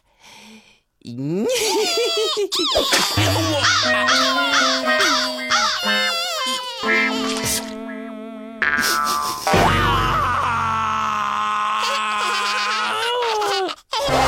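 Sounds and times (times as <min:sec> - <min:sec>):
speech: 0:01.0 - 0:06.9
lost baby crying: 0:01.8 - 0:08.6, 0:09.6 - 0:14.1.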